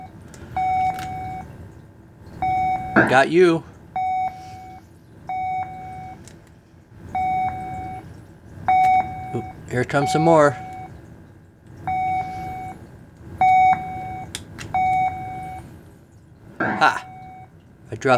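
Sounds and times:
video game radar-style electronic beeps: 0:00.0 - 0:01.5, 0:02.4 - 0:03.4, 0:04.0 - 0:06.2, 0:07.2 - 0:08.0, 0:08.7 - 0:11.0, 0:11.9 - 0:12.8, 0:13.4 - 0:15.7, 0:16.6 - 0:18.1
speech: 0:03.0 - 0:03.7, 0:09.7 - 0:10.6, 0:17.9 - 0:18.1.

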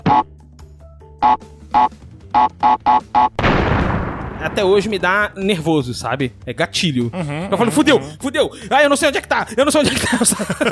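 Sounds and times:
video game TNT crate countdown beeps: 0:00.0 - 0:00.3, 0:01.2 - 0:03.4
speech: 0:01.2 - 0:10.7
video game TNT crate explosion: 0:03.4 - 0:05.3
laughter: 0:07.0 - 0:08.5, 0:09.7 - 0:10.7.

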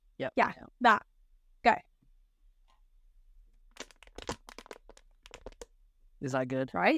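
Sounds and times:
speech: 0:00.2 - 0:01.9, 0:06.2 - 0:06.9
plastic water bottle being crunched: 0:03.7 - 0:05.7.

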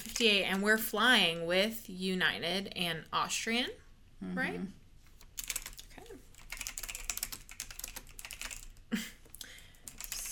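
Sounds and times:
speech: 0:00.2 - 0:04.8
typing on a computer keyboard: 0:05.2 - 0:08.8, 0:09.8 - 0:10.2.

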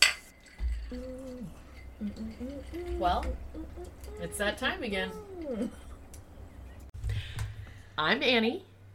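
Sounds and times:
glasses clinking in a toast: 0:00.0 - 0:03.4
speech: 0:00.9 - 0:05.9, 0:08.0 - 0:08.7.

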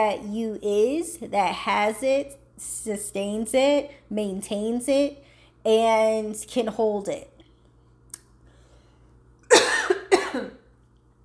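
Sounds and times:
speech: 0:00.0 - 0:07.3
person coughing harshly: 0:09.5 - 0:10.6.

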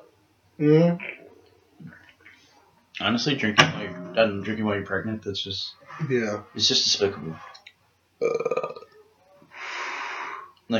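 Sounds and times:
speech: 0:00.6 - 0:01.2, 0:03.0 - 0:07.5, 0:08.2 - 0:08.6
loud burp with a rattling voiced tone: 0:08.2 - 0:08.9
breathy exhale of air: 0:09.5 - 0:10.5.

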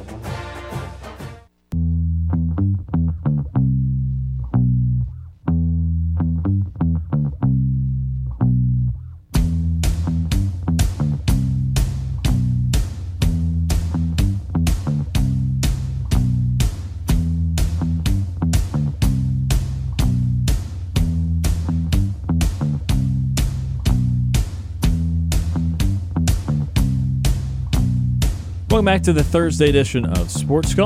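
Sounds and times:
punchy drums and crisp hi-hats beat: 0:00.0 - 0:01.4, 0:09.4 - 0:30.8
bass-heavy synth intro: 0:01.7 - 0:30.8
speech: 0:28.8 - 0:30.8.

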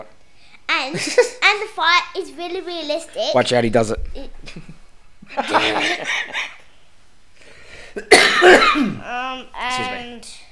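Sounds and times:
speech: 0:00.8 - 0:04.7, 0:05.3 - 0:06.5, 0:08.0 - 0:10.4
laughter: 0:04.5 - 0:06.6
person with a month-long cough coughing: 0:08.0 - 0:09.1.

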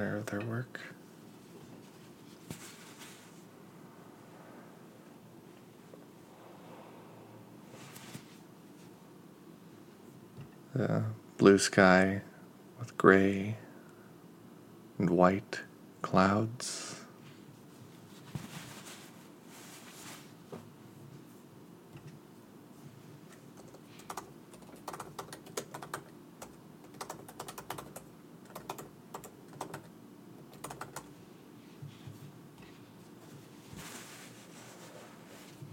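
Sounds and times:
speech: 0:00.0 - 0:01.0, 0:10.8 - 0:13.6, 0:15.0 - 0:17.0
steady low wash of noise: 0:00.0 - 0:35.7
keyboard typing of a grocery list: 0:23.6 - 0:31.1.

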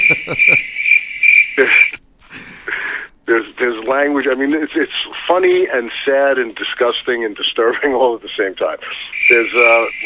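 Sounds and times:
laughter: 0:00.0 - 0:00.7, 0:01.6 - 0:02.6
crickets chirping: 0:00.0 - 0:02.0, 0:09.2 - 0:10.0
speech: 0:00.1 - 0:00.6, 0:03.9 - 0:10.0.

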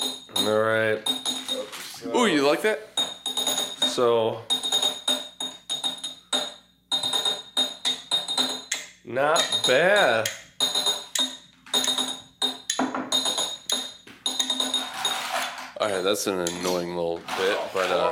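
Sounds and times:
drinking glasses clinking together in a toast: 0:00.0 - 0:01.8, 0:03.0 - 0:15.5
speech: 0:00.4 - 0:02.9, 0:04.0 - 0:04.5, 0:09.1 - 0:10.4, 0:15.8 - 0:18.1.

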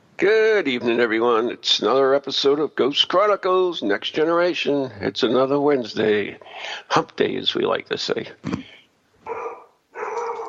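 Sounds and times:
speech: 0:00.2 - 0:08.7
dog barking: 0:09.2 - 0:10.4.

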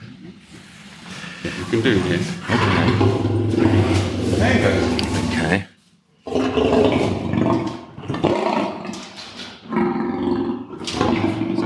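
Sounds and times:
speech: 0:01.4 - 0:05.7
big cat growling: 0:01.7 - 0:05.5, 0:06.2 - 0:11.6.

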